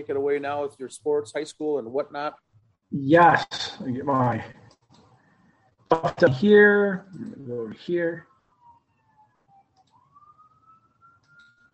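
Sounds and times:
speech: 0.0s - 4.6s, 5.9s - 8.3s
distant siren wailing: 7.3s - 11.7s.

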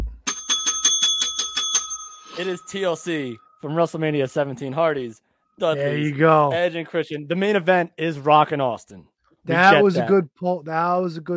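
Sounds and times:
bell ringing rapidly with quick metallic dings: 0.2s - 5.1s
speech: 2.4s - 11.3s.

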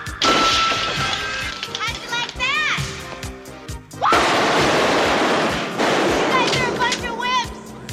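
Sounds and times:
glass smashing on someone: 0.2s - 2.3s, 4.1s - 7.3s.

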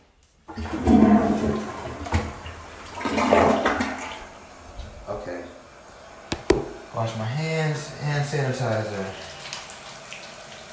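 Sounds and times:
toilet flushing: 0.5s - 4.6s, 7.6s - 10.7s
speech: 0.6s - 1.6s, 7.0s - 9.3s.

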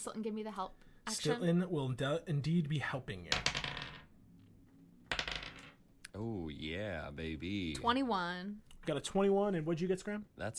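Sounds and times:
speech: 0.0s - 3.6s, 6.2s - 10.5s
dice clattering onto a tabletop: 3.3s - 4.1s, 5.1s - 5.8s.

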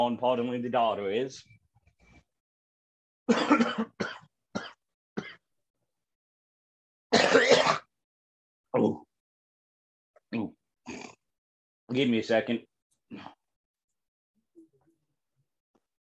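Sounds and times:
speech: 0.0s - 1.6s, 3.3s - 4.2s, 8.7s - 9.0s, 10.3s - 10.6s, 11.9s - 13.4s
harsh hacking coughing fit: 3.3s - 5.4s, 7.1s - 7.9s.

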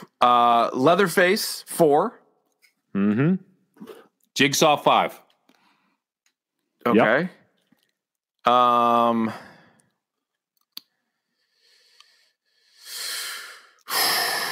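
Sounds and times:
speech: 0.0s - 2.2s, 2.9s - 5.2s, 6.8s - 7.4s, 8.4s - 9.5s
short voiced hum: 3.0s - 3.4s
deep cleansing breaths: 5.5s - 6.2s, 9.2s - 10.0s, 10.9s - 14.4s.

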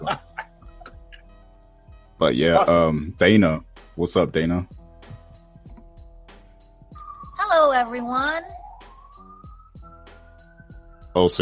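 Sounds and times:
speech: 2.2s - 4.8s, 7.8s - 8.6s, 11.2s - 11.4s
emergency vehicle siren: 7.0s - 10.7s.

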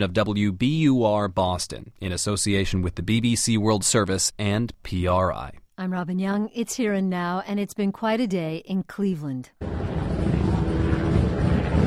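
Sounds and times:
speech: 0.0s - 9.9s
news helicopters hovering over a home in Cleveland: 9.6s - 11.8s.

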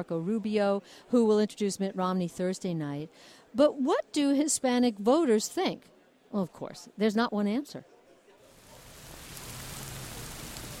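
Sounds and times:
speech: 0.0s - 7.9s
late-afternoon rainfall in Tampa: 8.5s - 10.7s.

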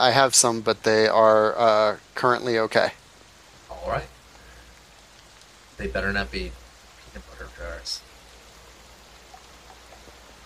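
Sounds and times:
speech: 0.0s - 3.0s, 3.8s - 4.1s, 5.8s - 6.6s, 7.6s - 8.0s
steady rain from a thunderstorm: 0.0s - 10.4s
faint droplet ticks: 4.3s - 5.7s, 9.1s - 10.4s.

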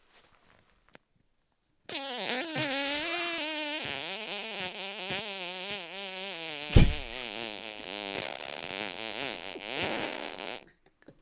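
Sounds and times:
high-pitched whining fart: 1.9s - 10.6s.

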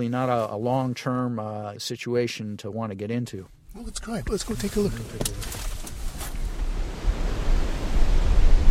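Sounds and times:
speech: 0.0s - 5.7s
wind buffeting the microphone: 4.2s - 8.6s
ocean waves breaking on a beach: 6.3s - 8.6s.

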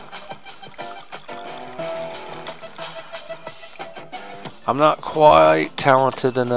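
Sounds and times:
coffee pouring into a cup: 0.0s - 4.1s
speech: 4.7s - 6.5s.

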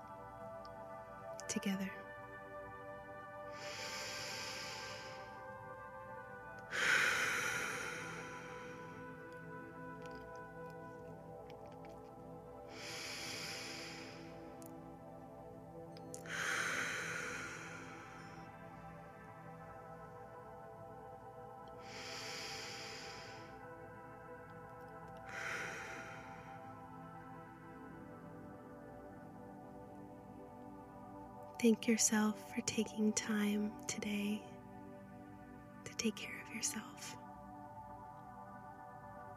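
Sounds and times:
low steady sustained tone: 0.0s - 39.3s
speech: 1.5s - 2.0s, 31.6s - 34.5s, 36.0s - 37.2s
slow deep breaths: 3.4s - 31.4s.

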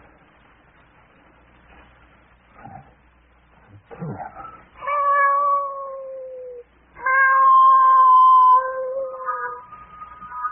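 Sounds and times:
cat yowling and caterwauling: 4.8s - 9.7s.

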